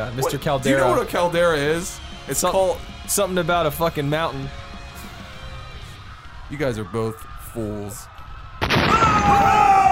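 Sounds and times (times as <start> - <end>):
speech: 0.0 - 4.6, 6.5 - 8.1
explosion blast with sustained rumbling and whining tones: 8.6 - 9.8.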